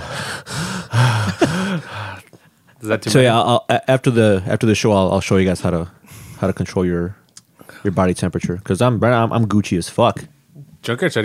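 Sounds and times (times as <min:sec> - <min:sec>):
man breathing heavily through the mouth: 0:00.0 - 0:02.5, 0:06.0 - 0:06.5
speech: 0:02.8 - 0:07.2, 0:07.8 - 0:11.2.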